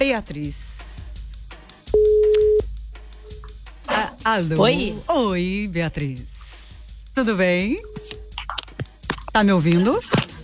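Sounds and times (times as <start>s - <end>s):
speech: 0.0s - 0.8s, 4.2s - 6.3s, 7.2s - 8.2s, 9.3s - 10.2s
telephone ringback tone during a call: 2.0s - 2.6s.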